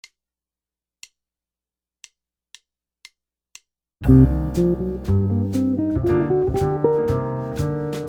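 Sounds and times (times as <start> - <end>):
guitar playing minor blues scales: 4.1 - 8.0.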